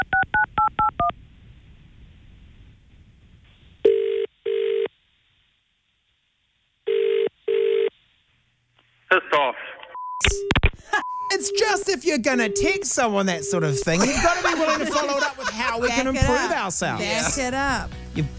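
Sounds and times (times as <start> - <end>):
touch-tone dialing beeps: 0.0 - 1.1, 10.0 - 11.8, 12.4 - 13.8
telephone ringing tone: 3.8 - 4.9, 6.9 - 7.9, 11.4 - 13.9
laughter: 10.8 - 11.2, 13.8 - 18.3
speech: 11.8 - 18.3.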